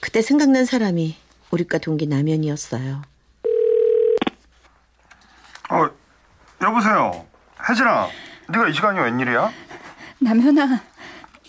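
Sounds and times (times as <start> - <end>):
speech: 0.1 - 3.1, 5.7 - 6.0, 6.6 - 10.9
ringback tone of an outgoing mobile phone call at a rest area at night: 3.4 - 4.3.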